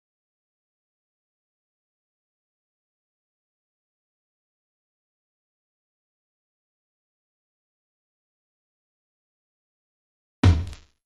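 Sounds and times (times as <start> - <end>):
battery mid tom drum hits: 10.4 - 10.8.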